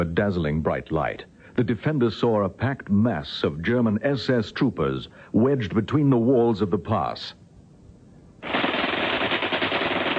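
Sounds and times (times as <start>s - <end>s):
speech: 0.0s - 7.4s
rifle and machine gun fire in a wartime ambush in a mountain pass: 8.4s - 10.1s.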